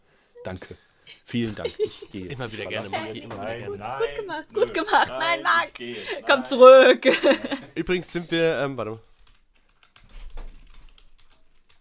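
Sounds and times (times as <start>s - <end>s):
speech: 0.4s - 9.1s
laughter: 1.3s - 8.2s
rapid typing on a computer keyboard: 9.1s - 11.7s.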